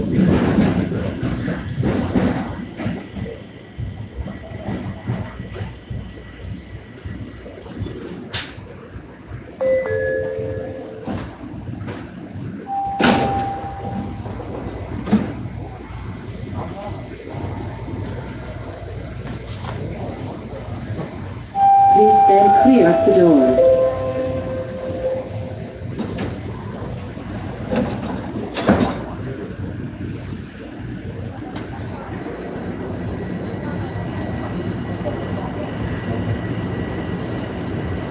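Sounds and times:
train carriage rumble and rattles: 0:00.0 - 0:38.0
brief tone: 0:09.6 - 0:11.6, 0:12.6 - 0:14.7, 0:21.6 - 0:25.8
train doors sliding open at a station with a whirring mechanism: 0:12.7 - 0:15.4, 0:21.6 - 0:25.7.

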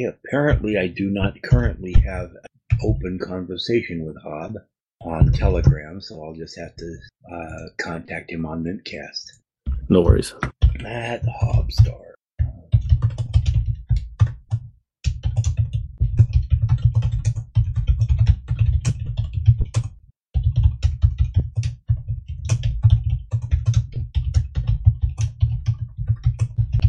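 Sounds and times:
speech: 0:00.0 - 0:12.1
fast heavy typing on a computer keyboard: 0:10.5 - 0:26.8.

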